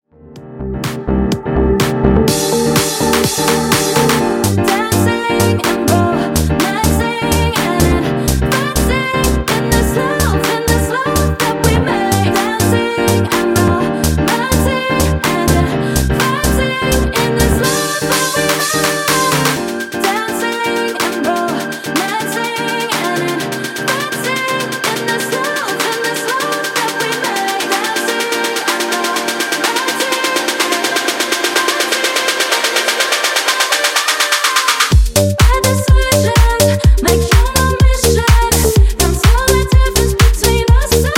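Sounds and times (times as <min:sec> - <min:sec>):
funky music edit at 125 BPM: 0:00.2 - 0:41.1.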